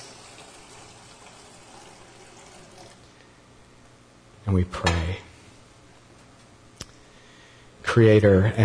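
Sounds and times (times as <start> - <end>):
water poured into a baptismal font: 0.0 - 3.1
speech: 4.5 - 5.3, 8.0 - 8.6.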